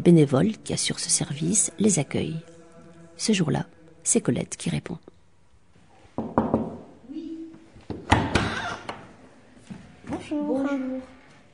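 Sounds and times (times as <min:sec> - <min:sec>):
speech: 0:00.0 - 0:02.5, 0:03.2 - 0:05.1, 0:10.3 - 0:11.2
firm knocks on a gatehouse door: 0:06.2 - 0:06.9, 0:07.9 - 0:08.6.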